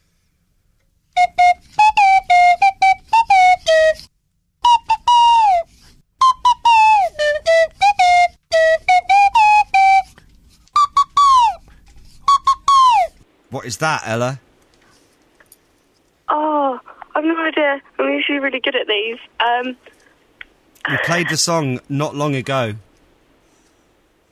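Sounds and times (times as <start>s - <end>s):
swanee whistle playing a pop melody: 1.2s - 13.2s
speech: 13.7s - 14.5s, 17.6s - 19.9s, 20.9s - 22.8s.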